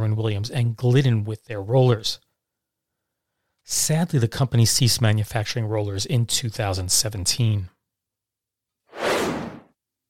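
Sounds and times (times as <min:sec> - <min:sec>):
speech: 0:00.1 - 0:02.2, 0:03.7 - 0:07.8
broadband whoosh sound effect: 0:08.9 - 0:09.7.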